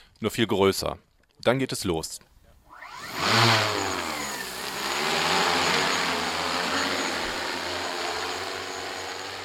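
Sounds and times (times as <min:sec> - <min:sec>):
speech: 0:00.2 - 0:02.3
twelve-rotor delivery drone taking off: 0:02.7 - 0:09.4.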